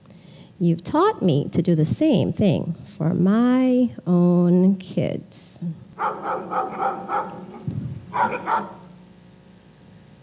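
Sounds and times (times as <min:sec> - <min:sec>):
speech: 0:00.6 - 0:08.8
dog barking: 0:06.0 - 0:09.0.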